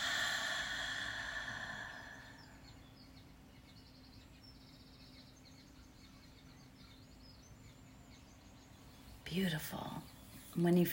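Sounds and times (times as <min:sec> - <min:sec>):
long deep breath drawn in through the nose: 0:00.0 - 0:02.6
speech: 0:09.3 - 0:10.9.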